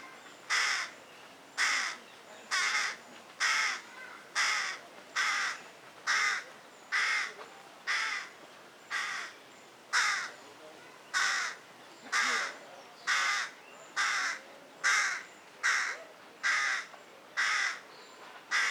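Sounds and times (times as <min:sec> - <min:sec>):
faint background noise: 0:00.0 - 0:18.6
carrion crow Corvus corone cawing: 0:01.6 - 0:03.8, 0:04.4 - 0:07.3, 0:07.9 - 0:08.3, 0:08.9 - 0:09.3, 0:09.9 - 0:10.3, 0:11.2 - 0:17.8.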